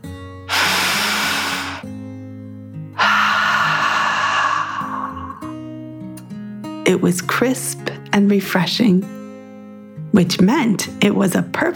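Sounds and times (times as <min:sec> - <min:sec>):
deep breath in and out voiced as a dragon: 0:00.5 - 0:01.9, 0:03.0 - 0:05.8
speech: 0:06.9 - 0:09.2, 0:10.1 - 0:11.7.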